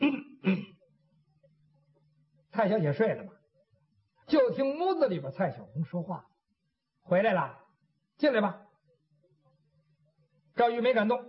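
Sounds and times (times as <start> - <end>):
soft cough or throat-clearing outside a bedroom door at night in a courtyard garden: 0.0 - 0.8
speech: 2.6 - 3.4, 4.3 - 6.3, 7.1 - 7.6, 8.2 - 8.6, 10.6 - 11.2.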